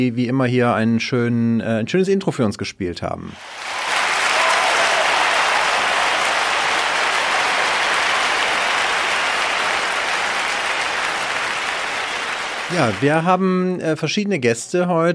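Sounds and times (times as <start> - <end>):
speech: 0.0 - 3.7, 12.7 - 15.1
large audience applauding: 3.4 - 13.4.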